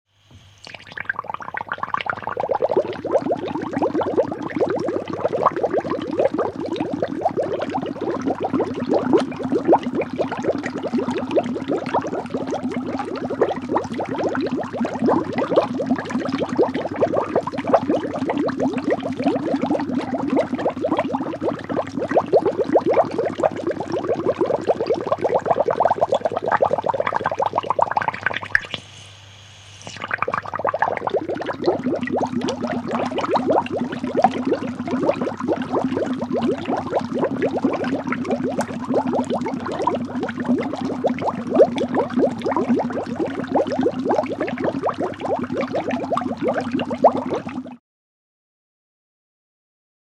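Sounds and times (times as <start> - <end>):
small constant bubbles: 0.3 - 47.8.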